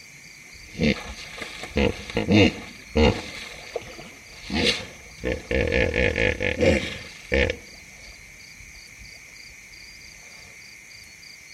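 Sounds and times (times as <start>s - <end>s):
steady high insect chorus on the savanna at nightfall: 0.0s - 11.5s
lion giving deep grunting calls on the savanna plains: 0.6s - 7.8s.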